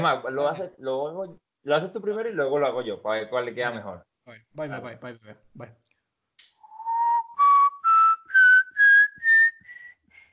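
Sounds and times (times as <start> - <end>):
speech: 0.0 - 5.9
person whistling a slow eerie rising phrase: 6.6 - 10.3.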